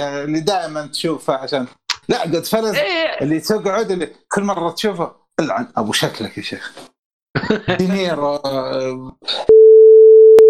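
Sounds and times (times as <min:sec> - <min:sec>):
speech: 0:00.0 - 0:09.6
laughter: 0:07.4 - 0:08.0
loud steady electronic censor beep: 0:09.5 - 0:10.4.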